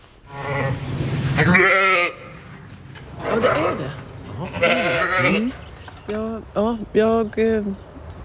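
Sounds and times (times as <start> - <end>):
sheep bleating: 0.3 - 0.8, 1.4 - 2.4, 3.2 - 5.6
speech: 5.2 - 7.9.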